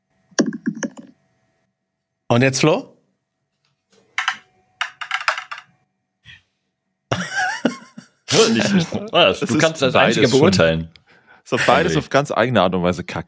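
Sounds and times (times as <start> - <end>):
speech: 2.3 - 2.9, 8.4 - 13.2
digital dice roll clatter from a dice app: 4.2 - 5.7
laughter: 7.1 - 10.6.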